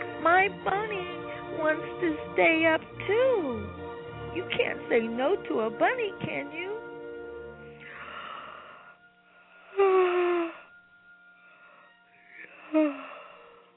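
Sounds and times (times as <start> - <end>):
speech: 0.4 - 3.8, 4.4 - 6.7, 12.8 - 13.1
soft breathing: 7.7 - 13.7
person acting out breathy yawns: 9.7 - 10.7, 12.4 - 13.5.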